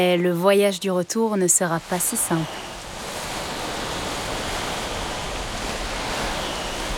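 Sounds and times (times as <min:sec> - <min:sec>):
speech: 0:00.0 - 0:02.7
sea waves crashing: 0:01.6 - 0:06.9
strong wind roaring: 0:02.4 - 0:06.9.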